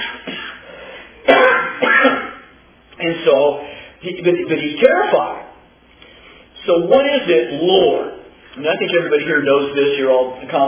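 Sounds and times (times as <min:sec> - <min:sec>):
coughing during a spoken Bible lesson: 0:00.0 - 0:02.6
speech: 0:03.2 - 0:05.4, 0:06.7 - 0:10.6.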